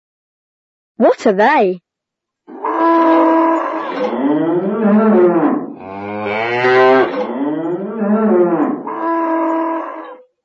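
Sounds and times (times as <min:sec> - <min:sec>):
speech: 0:01.0 - 0:01.8, 0:04.0 - 0:05.4
cows mooing: 0:02.5 - 0:10.2.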